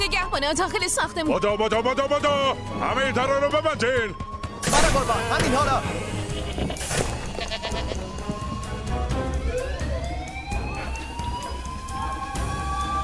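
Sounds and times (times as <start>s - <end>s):
speech: 0.4s - 6.8s
alarm siren wailing: 0.4s - 13.0s
sheep bleating: 5.2s - 8.1s.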